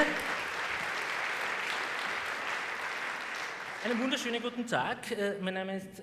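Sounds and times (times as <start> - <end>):
audience applause welcoming a speaker: 0.0 - 4.6
speech: 3.8 - 6.0.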